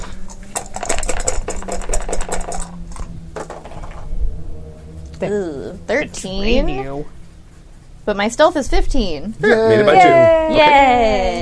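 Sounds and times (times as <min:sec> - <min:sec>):
dice rolled for a stealth roll in a game: 0:00.0 - 0:04.0
speech: 0:05.2 - 0:07.2, 0:08.0 - 0:11.4.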